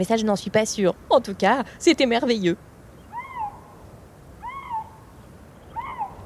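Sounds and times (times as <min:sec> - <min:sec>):
speech: 0:00.0 - 0:02.7
faint noise: 0:00.0 - 0:06.2
lynx moaning calls: 0:03.0 - 0:03.8, 0:04.4 - 0:06.2.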